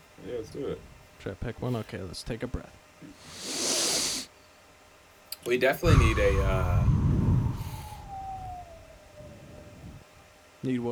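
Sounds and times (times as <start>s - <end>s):
speech: 0.2s - 3.5s, 5.4s - 7.0s, 10.6s - 10.9s
low rumbling background: 5.8s - 10.0s
person whistling one long downward-gliding note: 6.8s - 9.6s.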